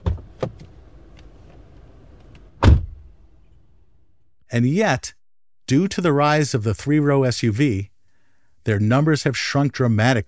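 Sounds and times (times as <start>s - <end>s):
new luxurious minivan door thudding shut: 0.0s - 0.6s, 2.6s - 3.1s
speech: 4.5s - 7.9s, 8.6s - 10.2s.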